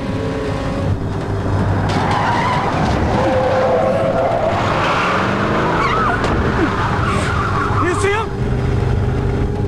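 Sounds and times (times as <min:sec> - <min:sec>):
pickup truck engine roar and rumble: 0:00.0 - 0:09.6
pickup truck tires squealing and skidding while swerving onto a highway: 0:01.5 - 0:08.4.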